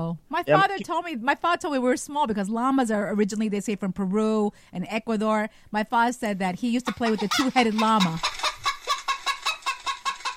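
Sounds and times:
speech: 0.0s - 8.5s
chicken clucking sound effect: 6.9s - 10.3s.

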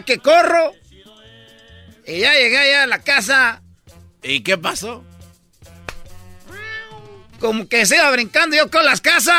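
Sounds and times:
speech: 0.0s - 0.8s, 2.1s - 3.6s, 4.2s - 5.1s, 7.4s - 9.3s
cat meowing in a drawn-out wavering cry: 6.4s - 7.3s.

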